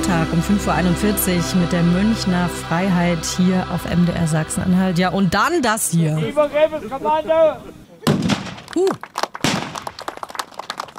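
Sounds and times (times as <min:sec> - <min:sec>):
speech: 0:00.1 - 0:07.8, 0:08.8 - 0:09.1
cannon salute blasts at the Königspfalz in Tilleda, Germany: 0:08.0 - 0:08.7, 0:09.4 - 0:09.8.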